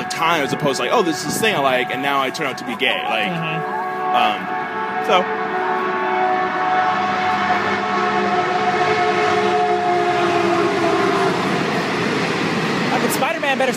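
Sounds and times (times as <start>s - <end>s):
train rumbling past a train station: 0.0s - 13.7s
speech: 0.2s - 5.4s, 13.5s - 13.7s.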